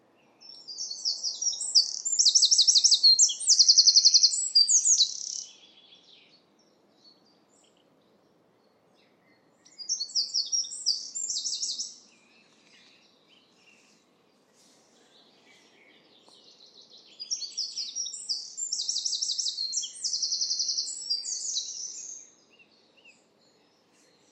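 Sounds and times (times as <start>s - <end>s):
bird singing high trilled phrases of rapid repeated notes: 0.4s - 6.3s, 9.3s - 13.6s, 15.3s - 23.3s.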